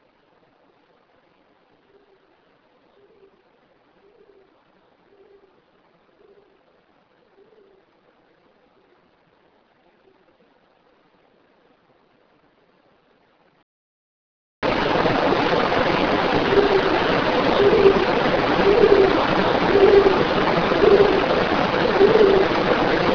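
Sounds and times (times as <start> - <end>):
whirling noise: 14.7 - 23.1.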